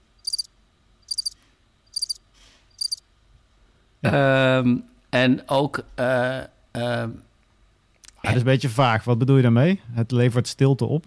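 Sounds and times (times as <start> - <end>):
high-pitched cricket chirps sound effect: 0.1 - 3.0
speech: 4.0 - 7.3, 8.2 - 11.0.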